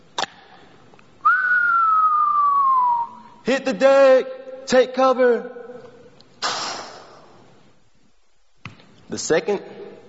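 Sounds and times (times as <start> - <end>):
voice imitating the whistle of an incoming mortar shell: 1.2 - 3.2
speech: 3.5 - 5.6, 9.1 - 9.8.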